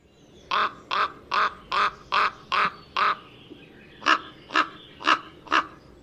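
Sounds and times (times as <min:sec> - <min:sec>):
raven giving deep harsh croaking cronk calls: 0:00.5 - 0:03.3, 0:04.0 - 0:05.8.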